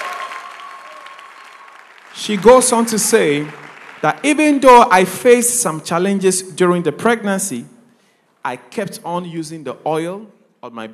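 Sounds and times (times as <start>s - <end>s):
congregation clapping hands: 0.0s - 4.9s
speech: 2.2s - 7.8s, 8.4s - 10.9s.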